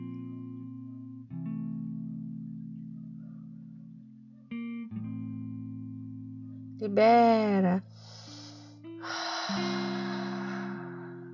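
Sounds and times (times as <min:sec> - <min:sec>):
soft sustained musical tones: 0:00.0 - 0:11.3
speech: 0:06.8 - 0:08.1
breathy open-mouthed exhale: 0:07.9 - 0:11.3.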